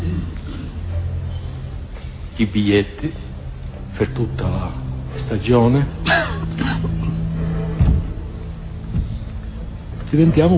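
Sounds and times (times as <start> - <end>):
steady low hum in old band-limited recording: 0.0 - 10.5
speech: 2.4 - 3.2, 4.0 - 6.9, 10.1 - 10.5
coughs in old live trial recording: 6.0 - 7.2.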